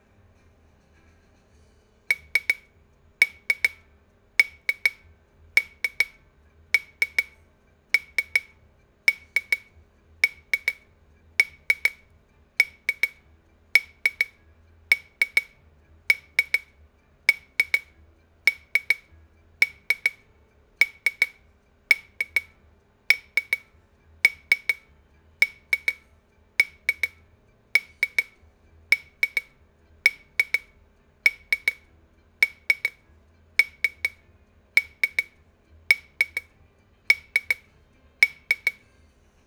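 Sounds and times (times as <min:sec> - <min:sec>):
shaker twisting: 0:02.1 - 0:03.8, 0:04.4 - 0:05.0, 0:05.6 - 0:06.2, 0:06.8 - 0:07.4, 0:08.0 - 0:10.8, 0:11.4 - 0:13.2, 0:13.8 - 0:16.7, 0:17.3 - 0:17.9, 0:18.5 - 0:20.2, 0:20.8 - 0:23.7, 0:24.3 - 0:26.0, 0:26.6 - 0:27.2, 0:27.8 - 0:30.7, 0:31.3 - 0:33.0, 0:33.6 - 0:34.2, 0:34.8 - 0:36.5, 0:37.1 - 0:38.8.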